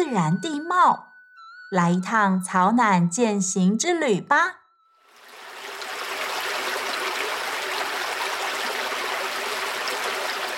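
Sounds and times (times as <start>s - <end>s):
speech: 0.1s - 1.1s, 1.7s - 4.6s
babbling stream flowing underfoot in the Caonan area of Maokong: 5.2s - 10.5s.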